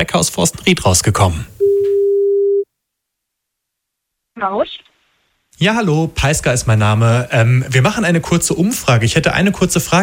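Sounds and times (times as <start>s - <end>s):
speech: 0.0s - 1.5s, 4.4s - 4.9s, 5.6s - 10.0s
electronic ringback tone on an outgoing phone call from a radio station: 1.6s - 2.6s.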